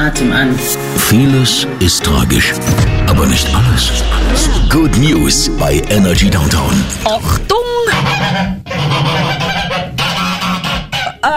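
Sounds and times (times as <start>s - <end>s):
speech: 0.0s - 9.5s
flock of geese honking and cackling: 7.8s - 11.3s.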